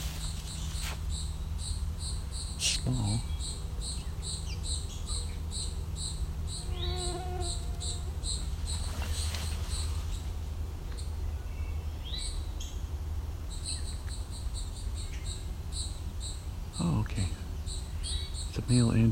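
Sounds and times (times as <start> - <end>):
steady pulsing chorus of crickets: 0.0 - 10.4, 13.4 - 19.1
eastern towhee calling: 0.0 - 12.8, 13.5 - 19.1
speech: 2.8 - 3.3, 18.7 - 19.1.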